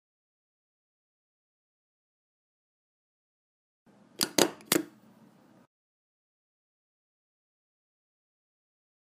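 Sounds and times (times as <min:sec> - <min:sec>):
stapler stapling: 0:04.2 - 0:05.0.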